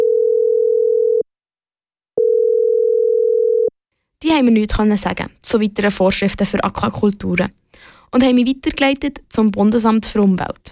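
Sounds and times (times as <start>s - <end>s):
telephone ringing tone while calling an office: 0.0s - 1.3s, 2.2s - 3.7s
speech: 4.4s - 10.6s.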